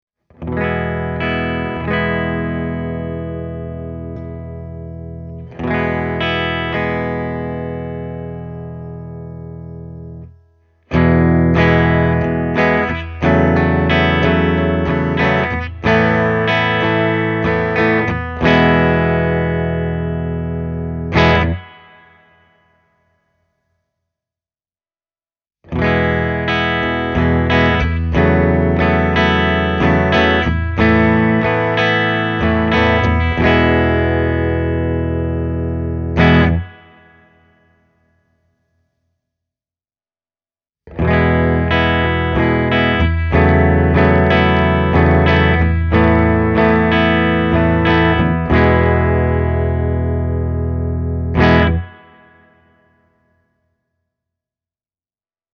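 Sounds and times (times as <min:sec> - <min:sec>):
Les Paul electric guitar through Brunetti Singleman 16 amplifier preamp: 0:00.4 - 0:10.2, 0:10.9 - 0:21.8, 0:25.7 - 0:37.0, 0:40.9 - 0:52.3.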